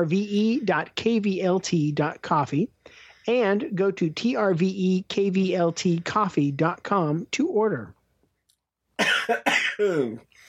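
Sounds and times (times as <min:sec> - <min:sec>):
speech: 0:00.0 - 0:08.0, 0:09.0 - 0:10.3
harsh coughing fit: 0:09.0 - 0:10.2.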